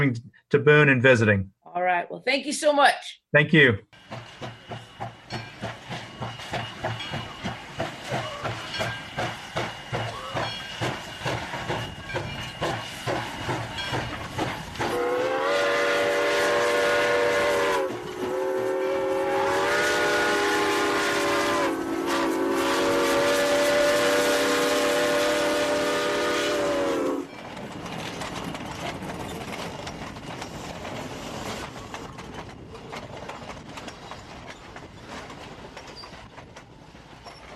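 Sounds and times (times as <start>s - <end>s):
speech: 0.0s - 4.6s
train cars rolling clatter: 4.0s - 37.5s
train whistle blasts: 14.8s - 27.3s.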